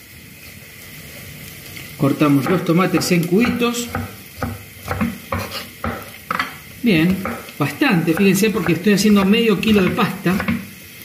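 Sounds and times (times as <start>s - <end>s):
garlic sizzling as it browns in a pan: 0.0s - 11.0s
scraping stirring strokes in a pan of tomato pasta sauce: 1.0s - 10.9s
speech: 2.0s - 4.2s, 6.8s - 10.5s.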